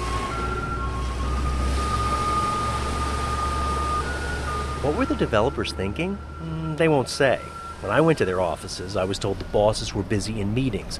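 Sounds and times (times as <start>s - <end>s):
thin high electronic tune played by street-cleaning truck: 0.0s - 8.4s
street-cleaning truck engine rumble: 0.0s - 10.9s
speech: 4.8s - 10.9s.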